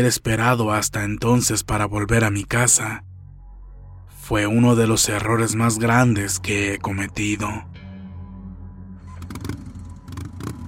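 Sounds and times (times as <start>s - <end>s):
speech: 0.0s - 3.1s, 4.3s - 7.8s
motorcycle engine idling and revving: 9.1s - 10.6s.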